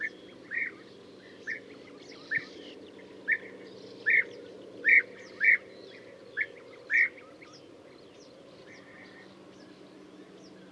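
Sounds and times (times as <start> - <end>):
European bee-eater calling: 0.0 - 10.7.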